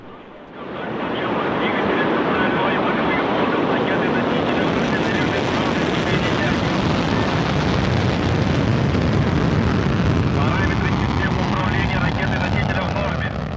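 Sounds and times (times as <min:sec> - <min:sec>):
Soyuz rocket launch roar: 0:00.6 - 0:13.5.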